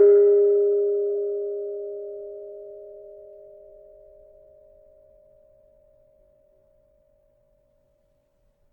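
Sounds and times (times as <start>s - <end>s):
tuned gravity harp note G sharp 4: 0.0s - 2.0s.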